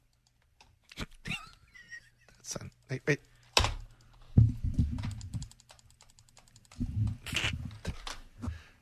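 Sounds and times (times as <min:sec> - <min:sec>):
computer mouse clicking: 0:00.0 - 0:01.0, 0:02.3 - 0:07.3
speech: 0:02.5 - 0:03.3.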